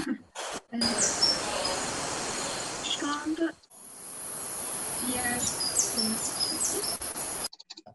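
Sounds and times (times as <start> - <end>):
hiss: 0.0 - 7.5
speech: 0.8 - 1.2, 3.1 - 3.6
small bird chirping: 0.8 - 3.4, 4.2 - 7.9.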